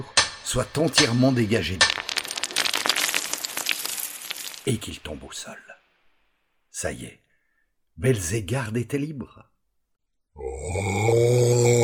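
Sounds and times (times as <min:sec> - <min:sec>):
speech: 0:00.0 - 0:02.1, 0:04.7 - 0:05.8, 0:06.8 - 0:07.2, 0:08.0 - 0:09.5, 0:10.4 - 0:11.8
dragon roaring with a smoky breath: 0:10.4 - 0:11.8.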